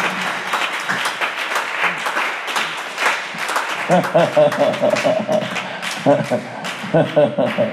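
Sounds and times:
church congregation clapping hands during a prayer service: 0.0s - 7.7s
laughter: 3.7s - 7.7s.

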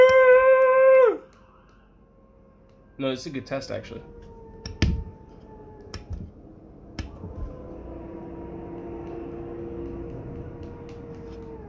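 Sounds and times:
dog howling: 0.0s - 1.3s, 3.6s - 11.6s
speech: 3.0s - 4.3s.

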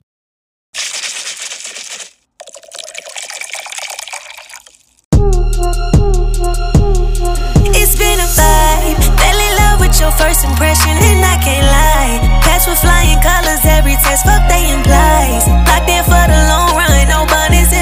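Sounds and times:
sparkling water poured into a cocktail glass: 0.8s - 5.0s
loud rhythmic music: 5.2s - 17.8s
speech: 10.0s - 17.8s.

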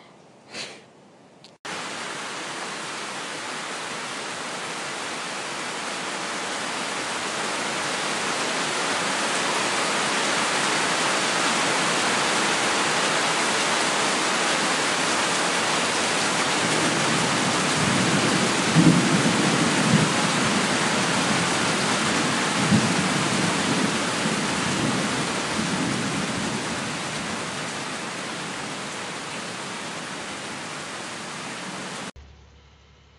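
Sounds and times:
heavy rain pouring: 1.7s - 32.1s
thunder rumbling: 15.5s - 32.0s.

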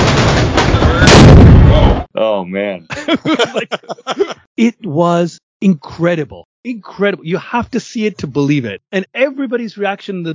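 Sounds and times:
loud fireworks explosions: 0.0s - 2.0s
speech: 2.4s - 10.3s
laughter: 2.9s - 4.5s.

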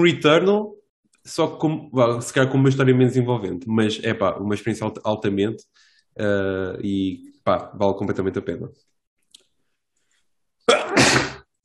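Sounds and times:
speech: 0.0s - 8.9s
person sneezing: 10.7s - 11.5s.

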